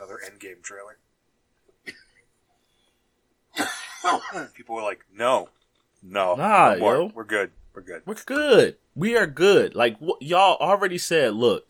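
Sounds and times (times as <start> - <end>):
speech: 0.2 - 1.1, 1.8 - 2.0, 3.6 - 11.6
person coughing: 3.6 - 4.6.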